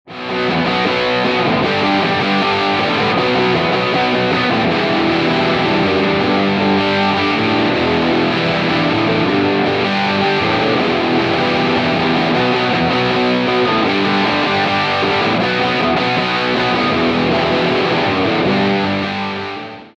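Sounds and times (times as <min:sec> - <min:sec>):
guitar with drive effect: 0:00.1 - 0:19.9.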